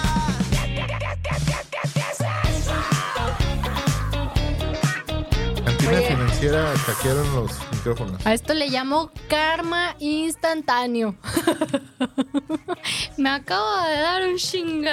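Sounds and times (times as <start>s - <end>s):
strained pitch-sliding vocal cries: 0.0s - 7.5s
laughter: 5.7s - 6.7s, 11.2s - 13.0s
person yelling in the background: 5.7s - 7.2s
speech: 5.9s - 14.9s.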